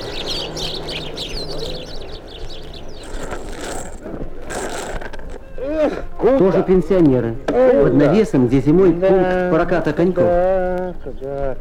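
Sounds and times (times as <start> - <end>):
low rumble: 0.0 - 6.4
dense flock of sparrows chirping: 0.0 - 11.6
speech: 6.3 - 11.6.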